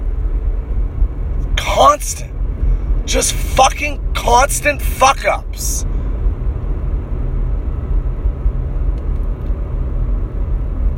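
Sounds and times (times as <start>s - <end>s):
car engine and tire drone: 0.0s - 10.9s
road traffic rumble heard from inside a moving car: 0.0s - 10.9s
speech: 1.8s - 2.3s, 3.1s - 5.9s.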